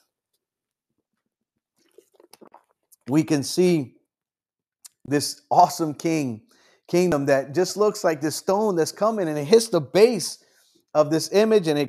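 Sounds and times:
slurping gulp of a drink: 0:01.7 - 0:03.1
wet mouth clicks while sipping a drink: 0:01.8 - 0:03.1, 0:04.8 - 0:05.1
speech: 0:03.1 - 0:04.0, 0:05.1 - 0:11.8.

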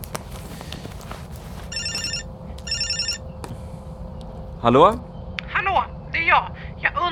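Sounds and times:
steady low rumble: 0:00.0 - 0:07.1
mobile phone ringing with warbling electronic tones: 0:01.6 - 0:03.3
speech: 0:04.6 - 0:05.1.

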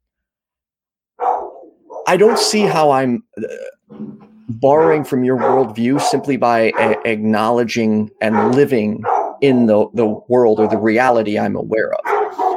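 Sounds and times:
dogs barking: 0:01.2 - 0:02.8, 0:04.7 - 0:09.5, 0:10.5 - 0:11.2, 0:12.0 - 0:12.5
speech: 0:02.1 - 0:12.4.

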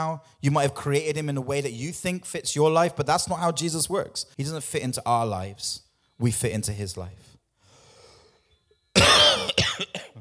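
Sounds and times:
speech: 0:00.0 - 0:07.3
person coughing harshly: 0:09.0 - 0:10.1.

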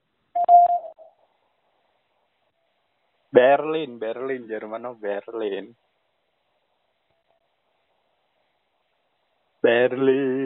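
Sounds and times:
short electronic quiz prompt tone: 0:00.4 - 0:01.0
speech: 0:03.4 - 0:05.9, 0:09.7 - 0:10.4.

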